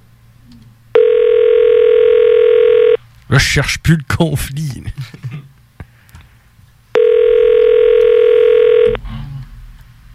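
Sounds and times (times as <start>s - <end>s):
telephone ringback tone during an outgoing call: 1.0s - 3.0s, 7.0s - 9.0s
speech: 3.3s - 5.2s.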